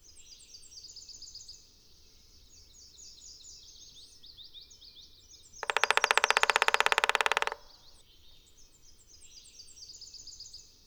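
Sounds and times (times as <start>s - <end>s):
black-backed woodpecker Picoides arcticus drumming: 5.6s - 7.9s.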